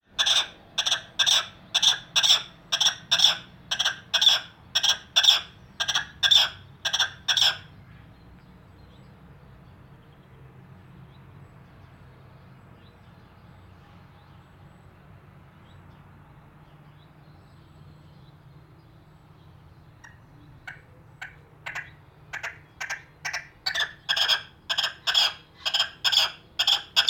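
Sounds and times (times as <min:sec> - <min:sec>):
Red-legged Partridge giving chuffing calls on a driveway: 0:00.2 - 0:07.7, 0:20.0 - 0:27.0.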